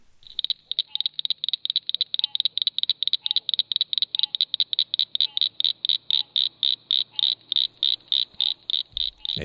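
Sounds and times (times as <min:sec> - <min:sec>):
faint noise: 0:00.0 - 0:09.4
northern cricket frog calling with rattling clicks: 0:00.2 - 0:09.4.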